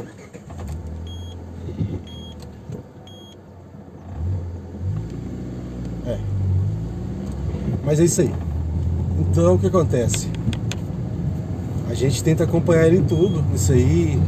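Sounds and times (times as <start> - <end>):
car engine rumble as the car slows to a stop: 0.0 - 14.2
short electronic beeps: 1.0 - 1.4, 2.1 - 2.4, 3.1 - 3.4, 13.1 - 13.5
speech: 6.1 - 6.3, 7.9 - 8.5, 9.4 - 10.5, 11.9 - 14.2.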